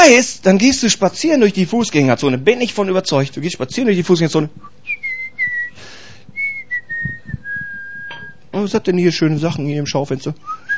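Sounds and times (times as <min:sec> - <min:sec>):
speech: 0:00.1 - 0:05.0, 0:08.5 - 0:10.6
person whistling a bright cheerful tune: 0:04.6 - 0:08.4, 0:10.4 - 0:10.7.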